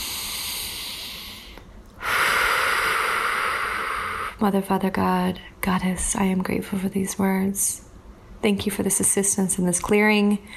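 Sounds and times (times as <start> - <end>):
deep breath during a spoken affirmation and meditation: 0.0 - 4.4
speech: 4.4 - 10.5.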